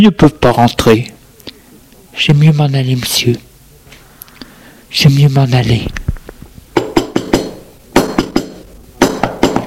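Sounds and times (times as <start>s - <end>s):
speech: 0.0s - 1.1s, 2.2s - 3.5s, 4.9s - 6.0s
firm sharp knocks on a door: 6.8s - 9.6s.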